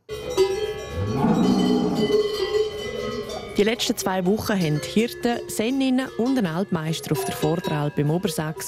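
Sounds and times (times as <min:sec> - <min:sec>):
cowbells clanging on alpine pasture: 0:00.0 - 0:08.6
cow mooing on alpine pasture: 0:00.9 - 0:02.4
speech: 0:03.6 - 0:08.6.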